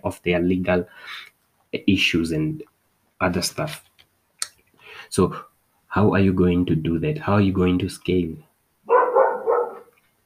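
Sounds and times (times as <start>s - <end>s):
speech: 0.0s - 3.9s, 5.1s - 8.5s
dog barking: 8.9s - 9.9s.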